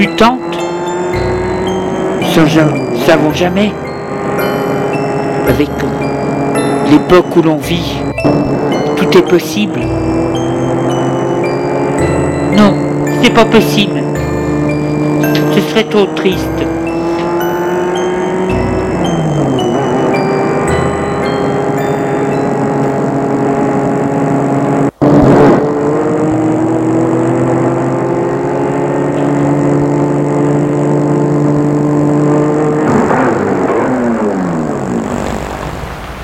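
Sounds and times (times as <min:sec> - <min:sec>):
speech: 0:00.0 - 0:00.5, 0:02.4 - 0:03.8, 0:05.5 - 0:06.1, 0:06.9 - 0:08.4, 0:09.2 - 0:10.2, 0:12.6 - 0:14.2, 0:15.8 - 0:16.8
car engine humming as the car drives up and slows: 0:00.0 - 0:36.2.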